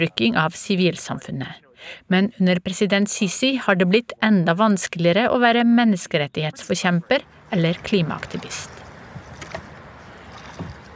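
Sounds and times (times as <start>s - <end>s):
speech: 0.0s - 8.8s
small boat moving on river water on the Nile in Egypt: 7.0s - 10.9s
soft knocks and splashes: 8.3s - 10.9s.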